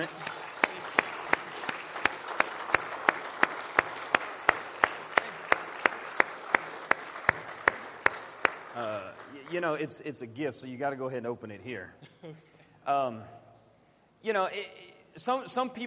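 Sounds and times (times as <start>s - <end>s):
speech: 0.0s - 0.2s, 9.5s - 13.4s, 14.2s - 15.8s
sharp hand claps: 0.0s - 9.6s
audience applauding for graduates: 0.0s - 9.9s.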